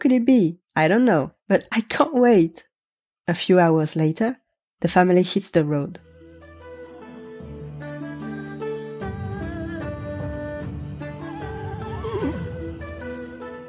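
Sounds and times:
speech: 0.1 - 2.7, 3.3 - 6.1
steady sustained music: 5.9 - 13.6
horse whinnying: 11.2 - 13.0.

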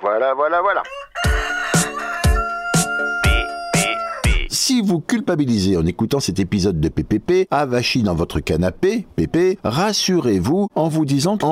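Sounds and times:
speech: 0.2 - 1.5, 4.7 - 11.5
chicken clucking: 0.8 - 4.5
rooster crowing: 0.8 - 4.5.

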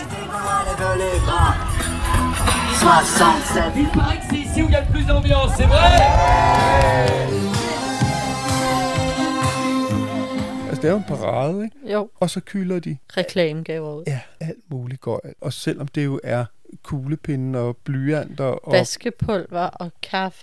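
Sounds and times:
crowd shouting, whooping and cheering at a sponsor caravan: 0.0 - 10.6
speech: 2.9 - 7.5, 10.8 - 20.4
many overlapping excited voices: 5.5 - 9.5.

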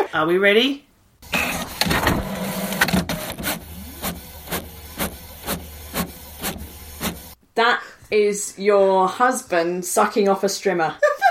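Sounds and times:
speech: 0.1 - 0.9, 7.6 - 11.2
four-year-old Kodak printer printing at home: 1.2 - 7.4.

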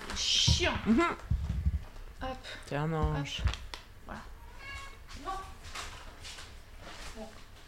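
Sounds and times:
speech: 0.2 - 1.3, 2.2 - 4.3
cat meowing for food: 4.4 - 5.0.

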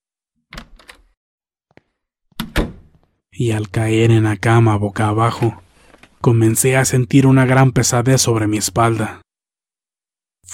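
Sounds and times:
small door latch click: 0.5 - 1.1, 2.4 - 2.9
bedroom door rattling knocks: 2.4 - 3.0
speech: 3.4 - 5.6, 6.2 - 9.2.

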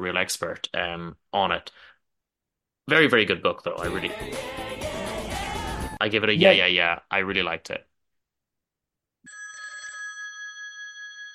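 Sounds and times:
speech: 0.0 - 1.9, 2.9 - 5.0, 6.0 - 7.9
telephone bell ringing: 9.3 - 11.3.

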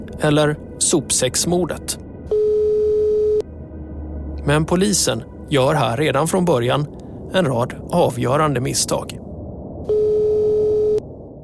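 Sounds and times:
speech: 0.1 - 2.1, 4.4 - 9.2
faint phone line hiss: 2.3 - 3.4, 9.9 - 11.0
telephone ringing tone on a call: 2.3 - 3.4, 9.9 - 11.0.

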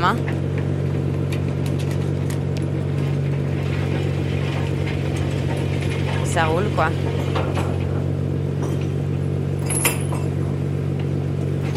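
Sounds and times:
speech: 0.0 - 0.3, 6.4 - 7.6
loud steady low engine drone: 0.0 - 11.7
metal chains being hooked and unhooked: 9.6 - 10.4.

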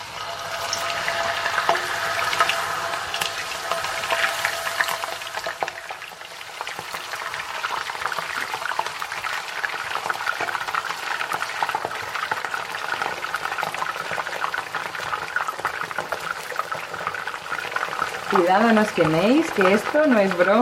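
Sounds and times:
cut potatoes frying in very hot oil in a frying pan: 0.0 - 20.6
speech: 18.4 - 20.6.

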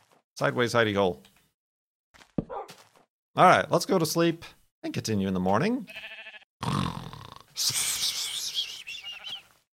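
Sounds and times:
speech: 0.4 - 1.3, 3.4 - 6.8, 7.6 - 7.9
sheep bleating: 5.9 - 6.5, 9.0 - 9.4.

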